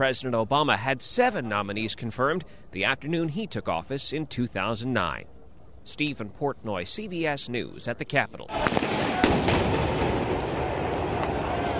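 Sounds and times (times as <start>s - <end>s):
speech: 0.0s - 9.0s
tear gas rounds fired at a street protest: 8.5s - 11.6s
dense roar of outdoor noise at a street protest: 8.5s - 11.7s.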